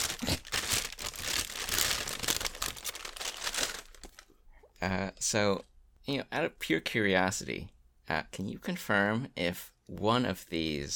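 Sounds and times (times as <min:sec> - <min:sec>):
crinkly plastic bag being handled: 0:00.0 - 0:04.4
speech: 0:04.8 - 0:10.9.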